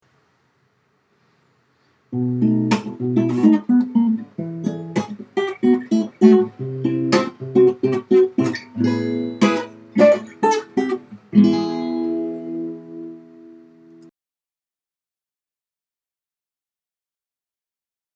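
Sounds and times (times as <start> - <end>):
guitar licks: 2.1 - 14.1.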